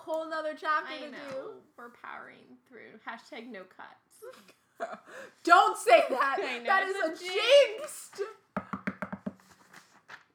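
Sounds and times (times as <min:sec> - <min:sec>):
speech: 0:00.1 - 0:08.4
knocks on a wooden surface: 0:08.6 - 0:09.4.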